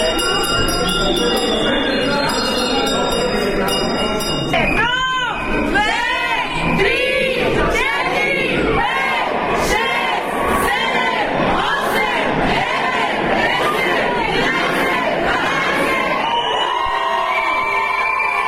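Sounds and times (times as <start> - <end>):
school bell ringing: 0.0 - 5.5
noisy cheering crowd: 0.0 - 18.4.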